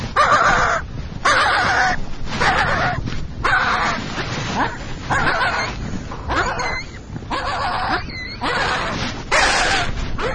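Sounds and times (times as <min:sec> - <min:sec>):
skua calling in harsh raspy bursts near its nest: 0:00.2 - 0:04.0, 0:04.6 - 0:10.3.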